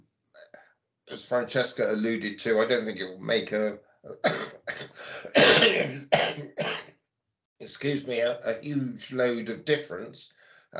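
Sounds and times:
speech: 1.1 - 4.4, 7.8 - 10.7
harsh coughing: 4.2 - 6.9.

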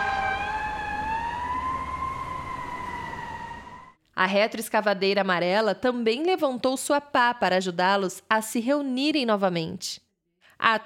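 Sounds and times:
fire truck siren wailing: 0.0 - 4.0
speech: 4.2 - 10.0, 10.6 - 10.8.

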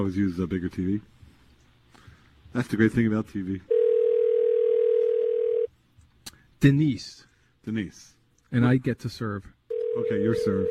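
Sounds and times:
speech: 0.0 - 1.2, 2.5 - 3.8, 6.6 - 10.6
push-button telephone dial tone: 3.7 - 5.7, 9.7 - 10.6.

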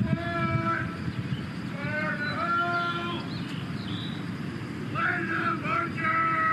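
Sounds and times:
birds chirping and twittering: 0.0 - 6.5
steady low rumble of outdoor noise: 0.0 - 6.5.

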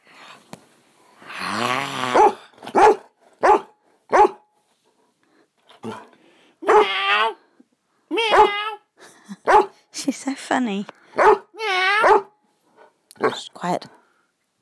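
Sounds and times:
dog barking: 2.2 - 4.5, 6.6 - 7.0, 8.3 - 8.6, 9.4 - 9.8, 11.2 - 12.4, 13.2 - 13.4
speech: 10.5 - 11.0.

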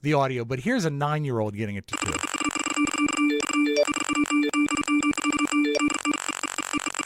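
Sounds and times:
speech: 0.0 - 2.4
phone ringtone ringing from notifications: 1.9 - 7.0.

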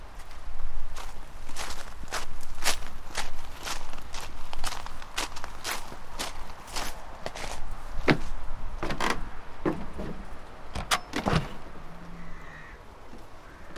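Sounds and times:
footsteps: 0.2 - 9.1
shed door being unlatched and pulled open: 8.0 - 11.7.

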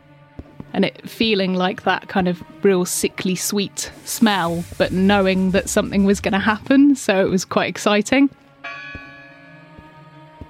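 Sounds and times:
speech: 0.7 - 8.8
church bell tolling: 8.6 - 9.7.

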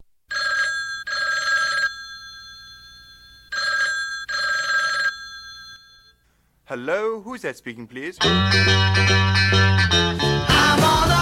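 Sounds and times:
telephone bell ringing opening a song: 0.3 - 6.2
speech: 6.7 - 10.2.

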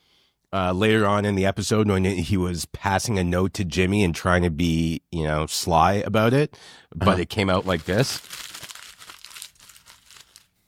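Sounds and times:
speech: 0.5 - 8.6
paper being crumpled: 7.4 - 10.5.

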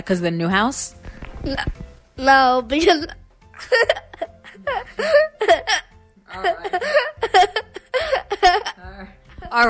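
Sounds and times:
speech: 0.0 - 4.0
child giggling with breathy laughs: 2.8 - 8.8.

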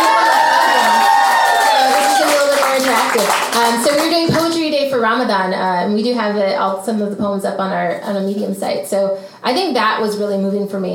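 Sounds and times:
small live audience cheering and whooping: 0.0 - 2.9
clapping: 0.0 - 4.5
speech: 3.1 - 10.9.

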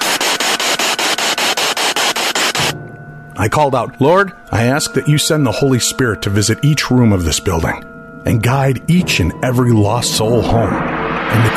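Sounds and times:
popping and hissing radio static: 0.0 - 2.7
speech: 3.4 - 11.5.

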